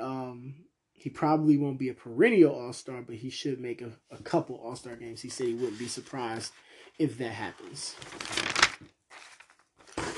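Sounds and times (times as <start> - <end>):
speech: 1.0 - 8.9
pages being turned: 5.2 - 6.6, 7.2 - 10.1.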